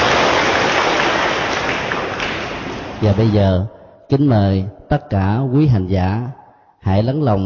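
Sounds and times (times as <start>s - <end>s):
large crowd applauding: 0.0s - 3.4s
speech: 3.0s - 7.4s.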